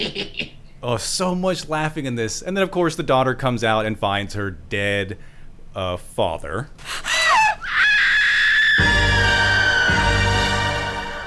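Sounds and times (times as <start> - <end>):
speech: 0.0 - 7.1
woman screaming in a horror film: 7.0 - 10.8
deep rumbling musical swell: 8.8 - 11.2.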